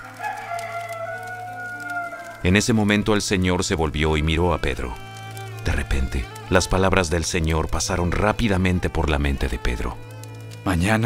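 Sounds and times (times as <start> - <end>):
rooster crowing: 0.0 - 2.5
speech: 2.4 - 5.1, 5.8 - 11.0.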